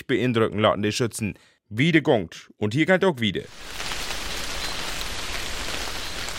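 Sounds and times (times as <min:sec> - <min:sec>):
speech: 0:00.1 - 0:04.0
rain falling: 0:03.5 - 0:06.3.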